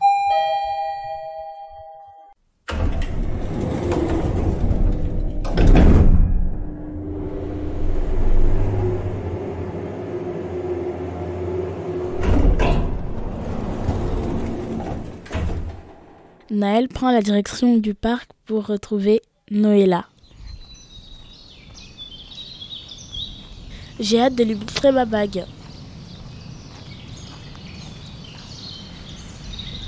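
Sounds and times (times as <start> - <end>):
two-tone elevator chime: 0.0 - 2.4
elevator doors sliding with clunks: 2.7 - 16.4
speech: 16.6 - 20.1, 24.0 - 25.6.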